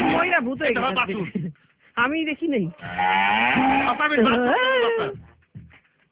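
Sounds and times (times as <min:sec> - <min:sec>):
cow mooing at a home: 0:00.0 - 0:00.4, 0:02.8 - 0:04.3
speech: 0:00.3 - 0:05.3.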